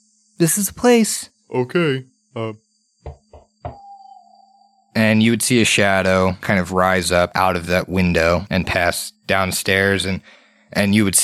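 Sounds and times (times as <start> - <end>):
faint steady tone: 0.0 - 11.2
speech: 0.4 - 3.2, 5.0 - 11.2
knocking on a door: 3.1 - 3.8.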